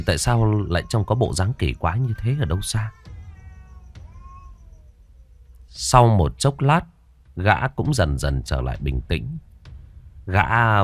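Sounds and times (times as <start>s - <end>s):
speech: 0.0s - 3.0s, 5.8s - 9.5s, 10.3s - 10.8s
cat meowing in a house: 0.1s - 5.7s.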